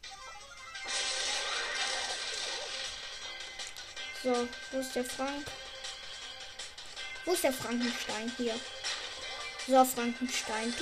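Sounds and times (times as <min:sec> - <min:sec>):
box being smashed in a video game: 0:00.9 - 0:03.0
speech: 0:04.2 - 0:05.6, 0:07.2 - 0:08.8, 0:09.6 - 0:10.8.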